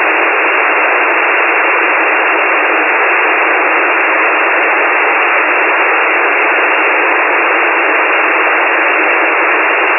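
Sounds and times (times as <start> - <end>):
SSB radio noise: 0.0 - 9.9.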